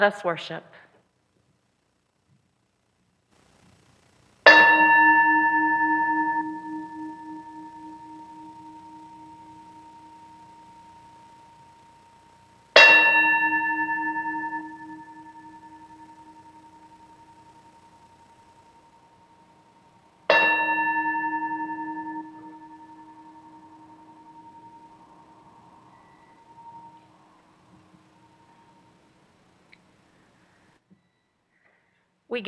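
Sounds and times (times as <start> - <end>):
speech: 0.0 - 0.8
struck bell ringing with long shimmering decay: 4.5 - 19.4, 20.3 - 28.9.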